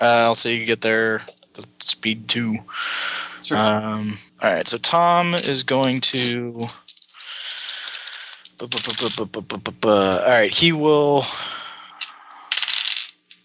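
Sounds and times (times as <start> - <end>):
speech: 0.0 - 6.9, 8.6 - 11.6
dice clattering across a hard tabletop: 1.2 - 1.4, 5.4 - 9.2, 12.0 - 13.4.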